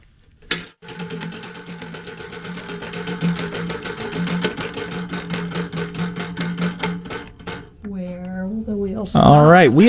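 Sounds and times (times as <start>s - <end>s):
prize wheel spinning at a live call-in event: 0.8s - 7.8s.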